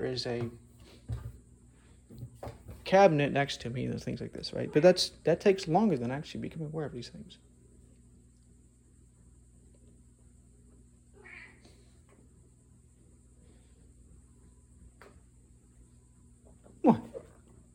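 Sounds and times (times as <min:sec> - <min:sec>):
speech: 0:00.0 - 0:01.2, 0:02.9 - 0:07.5
steady low electrical hum: 0:00.0 - 0:17.7
female cat meowing sharply in annoyance: 0:11.2 - 0:11.6.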